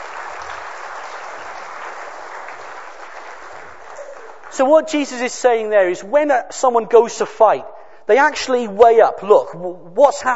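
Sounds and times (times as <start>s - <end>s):
room full of people applauding: 0.0s - 4.9s
speech: 4.6s - 10.3s.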